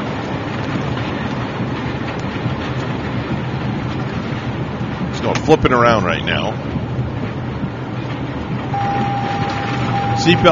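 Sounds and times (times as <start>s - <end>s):
violent tornado roaring around a vehicle: 0.0s - 10.4s
speech: 5.3s - 6.7s, 10.2s - 10.4s.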